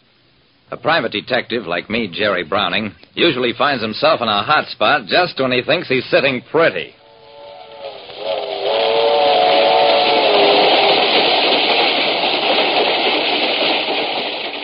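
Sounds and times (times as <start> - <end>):
speech: 0.7 - 7.0
faint tonal whine of a passenger train: 6.8 - 12.3
short-line passenger train rolling along the rails: 7.0 - 14.6.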